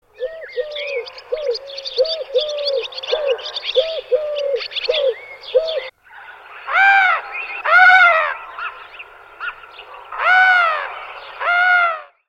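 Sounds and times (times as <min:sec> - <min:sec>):
birds: 0:00.0 - 0:12.2
collared dove: 0:00.1 - 0:12.1.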